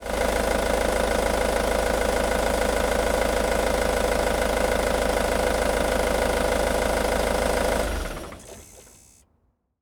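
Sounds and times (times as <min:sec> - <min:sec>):
van engine idling and shutting off: 0:00.0 - 0:09.2.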